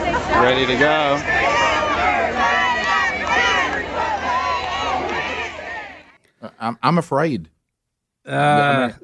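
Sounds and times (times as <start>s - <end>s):
large crowd cheering and chattering: 0.0s - 6.2s
speech: 0.4s - 1.6s, 6.6s - 7.5s, 8.2s - 9.0s.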